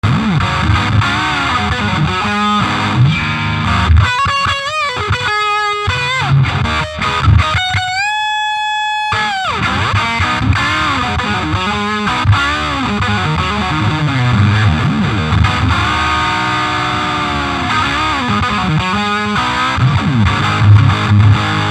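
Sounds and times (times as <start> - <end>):
Flying V electric guitar: 0.0 - 21.6.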